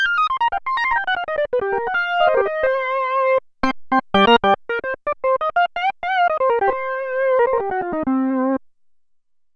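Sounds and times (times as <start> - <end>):
Roland Alpha Juno-2 synthesizer lead: 0.2 - 3.0, 4.2 - 8.6.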